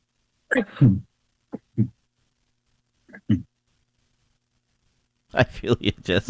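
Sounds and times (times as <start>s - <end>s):
person sneezing: 0.5s - 1.0s
speech: 0.5s - 1.1s, 1.8s - 2.0s, 3.3s - 3.5s, 5.3s - 6.2s.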